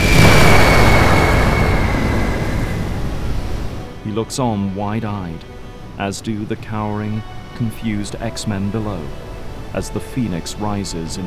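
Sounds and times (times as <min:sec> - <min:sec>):
fiery explosion with rumbling roar: 0:00.0 - 0:03.9
speech: 0:04.2 - 0:11.2.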